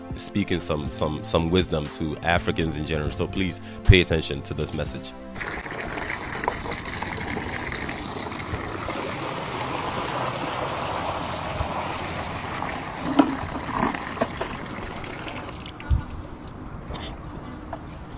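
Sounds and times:
speech: 0:00.2 - 0:06.0
water pouring into a leaking bucket: 0:05.4 - 0:15.9
clunks and drips: 0:05.4 - 0:16.2.

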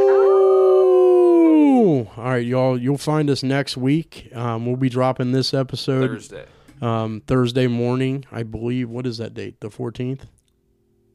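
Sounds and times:
people howling in imitation of a wolf: 0:00.0 - 0:02.0
speech: 0:02.3 - 0:10.4.

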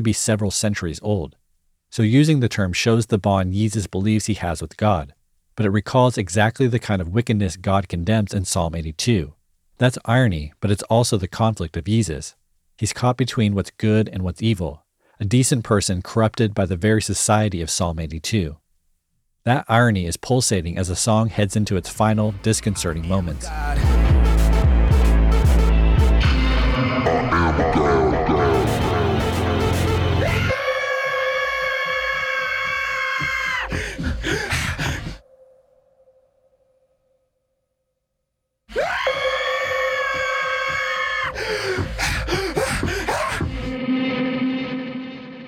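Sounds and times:
speech: 0:00.0 - 0:18.6, 0:19.4 - 0:24.2
dense music mix of a song: 0:22.3 - 0:30.6
panicked breathlessness with heavy reverb: 0:26.4 - 0:35.3, 0:38.7 - 0:43.8
strained primal screams with wavering harmonics: 0:26.8 - 0:35.1, 0:38.7 - 0:43.8.

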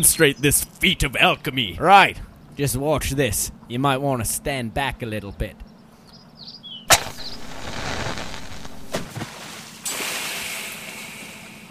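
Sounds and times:
speech: 0:00.0 - 0:05.6
flare flame hissing as water snuffs it: 0:06.9 - 0:11.4
underwater flare igniting crack: 0:06.9 - 0:11.4
underwater flare bubbling fizzing hiss: 0:07.4 - 0:11.5.

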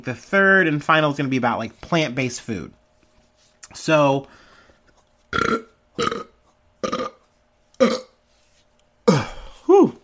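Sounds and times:
speech: 0:00.0 - 0:02.8, 0:03.7 - 0:04.4, 0:05.3 - 0:06.1
burping: 0:05.3 - 0:07.2, 0:07.8 - 0:08.2
person exclaiming: 0:09.1 - 0:10.0.

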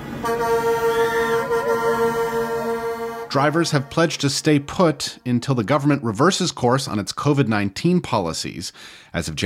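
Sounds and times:
truck horns blaring in a convoy protest: 0:00.0 - 0:05.2
speech: 0:03.3 - 0:09.4.

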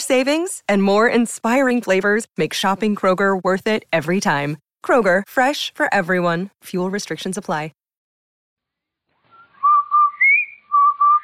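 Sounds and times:
speech: 0:00.1 - 0:07.8
whistled advertising jingle: 0:09.3 - 0:11.2.

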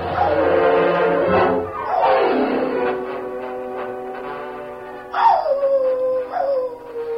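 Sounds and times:
dog howling in long mournful wails: 0:00.1 - 0:00.6, 0:01.7 - 0:03.1, 0:05.1 - 0:07.1.

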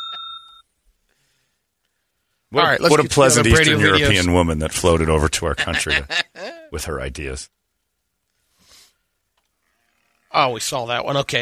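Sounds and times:
bright bell ding: 0:00.0 - 0:00.7
speech: 0:02.5 - 0:07.6, 0:10.3 - 0:11.4
laughter: 0:02.9 - 0:06.8.

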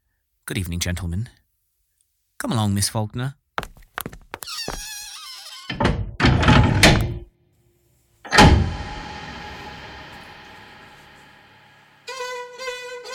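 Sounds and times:
speech: 0:00.5 - 0:01.4, 0:02.4 - 0:03.4
door creaking with a scraping swing: 0:04.4 - 0:07.3, 0:08.3 - 0:10.1
door shutting with a heavy thud: 0:05.2 - 0:07.3, 0:08.3 - 0:11.4.

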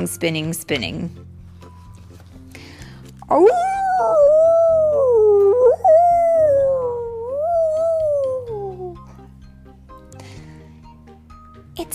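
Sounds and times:
speech: 0:00.0 - 0:01.3, 0:03.3 - 0:04.6
dog howling: 0:03.4 - 0:09.0.

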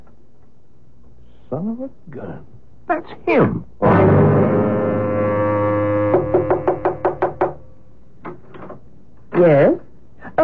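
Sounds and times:
speech: 0:01.5 - 0:04.7, 0:09.4 - 0:09.8
low steady droning tone: 0:03.8 - 0:07.6
firm knocks on a door: 0:06.1 - 0:07.6.

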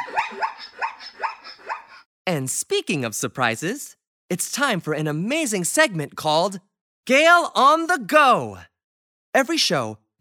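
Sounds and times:
zebra calling with sharp yelping barks: 0:00.0 - 0:02.0
speech: 0:02.3 - 0:08.7, 0:09.3 - 0:10.1.

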